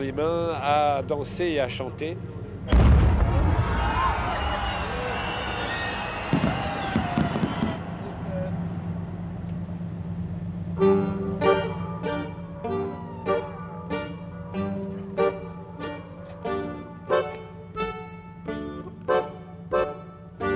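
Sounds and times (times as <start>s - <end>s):
speech: 0.0s - 4.3s
noisy outdoor crowd: 0.0s - 10.0s, 10.8s - 19.6s
voices: 0.0s - 20.4s
booming fireworks exploding and crackling outdoors: 2.7s - 4.4s, 6.2s - 8.0s.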